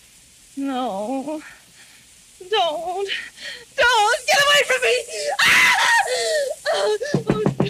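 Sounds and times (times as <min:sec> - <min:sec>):
speech: 0:00.6 - 0:01.6, 0:02.4 - 0:07.4
woman screaming in her sleep: 0:03.8 - 0:07.6
woman gasping and sobbing: 0:05.0 - 0:07.4.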